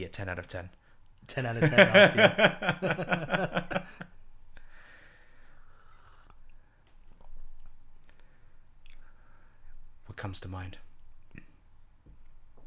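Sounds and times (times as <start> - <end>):
speech: 0.0 - 4.1, 10.2 - 10.9
laughter: 1.6 - 4.1
crisp food being bitten and chewed during a taste test: 5.8 - 8.2.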